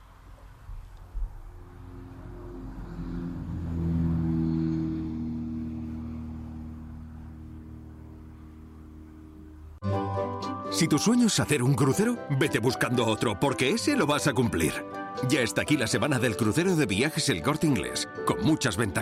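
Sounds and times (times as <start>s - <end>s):
airplane engine drone: 0.9s - 9.8s
speech: 10.8s - 19.0s.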